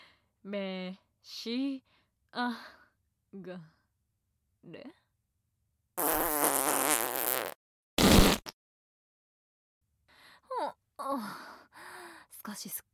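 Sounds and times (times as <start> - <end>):
speech: 0.4 - 3.8, 4.6 - 5.0, 10.6 - 11.5, 12.4 - 12.9
loud long buzzy fart: 6.0 - 8.6.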